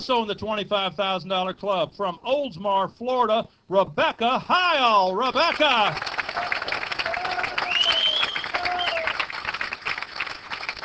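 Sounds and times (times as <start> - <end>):
speech: 0.0 - 6.8
large audience applauding for achievers club members: 5.4 - 10.8
whistles: 7.6 - 9.2.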